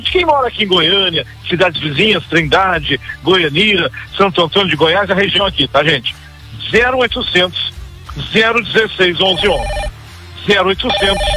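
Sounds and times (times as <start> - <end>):
speech: 0.0 - 7.6, 8.2 - 9.8, 10.4 - 11.3
telephone ringing with electronic warbling tones: 8.2 - 10.0, 10.8 - 11.3.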